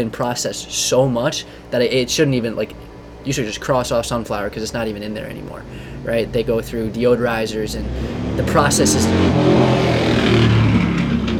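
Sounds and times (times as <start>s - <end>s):
speech: 0.0s - 10.0s
motorcycle engine passing outside: 2.5s - 11.3s.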